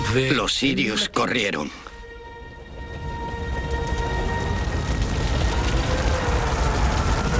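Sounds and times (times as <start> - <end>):
speech: 0.1 - 1.9
heavy battle noise from artillery fire in a tank battle: 3.9 - 7.3.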